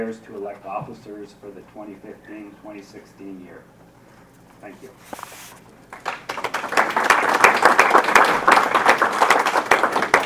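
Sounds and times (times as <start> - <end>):
speech: 0.0 - 3.8, 4.6 - 6.1
room full of people applauding at a meeting: 5.9 - 10.2.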